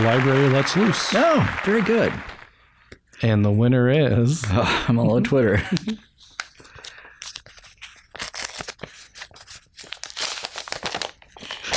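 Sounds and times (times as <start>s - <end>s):
speech: 0.0s - 2.4s, 3.2s - 6.1s
laughter: 4.4s - 6.1s
paper envelope being torn open and crinkled: 6.3s - 11.7s.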